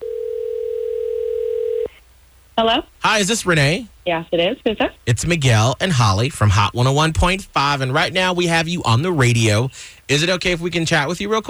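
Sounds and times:
telephone dial tone while placing a call: 0.0 - 1.9
speech: 2.6 - 11.4.

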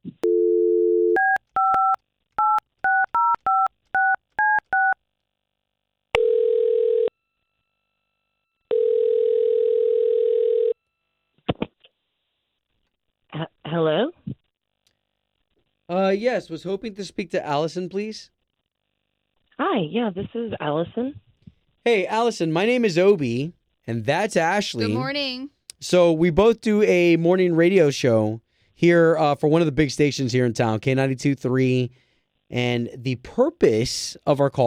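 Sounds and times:
phone line dial tone: 0.2 - 5.0, 6.2 - 7.1, 8.7 - 10.8
speech: 16.1 - 18.4, 19.8 - 21.2, 21.8 - 34.6.

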